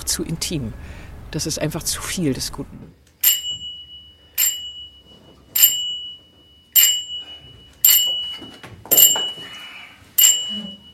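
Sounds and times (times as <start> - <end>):
speech: 0.1 - 3.0
theatre bell signalling rehearsal resuming: 3.2 - 9.6, 10.2 - 10.9.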